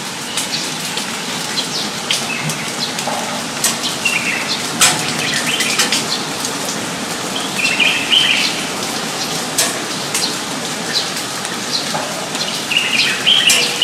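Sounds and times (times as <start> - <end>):
steady rain patter: 0.0 - 13.8
birds chirping and trilling in rain: 1.5 - 6.4, 7.3 - 13.8.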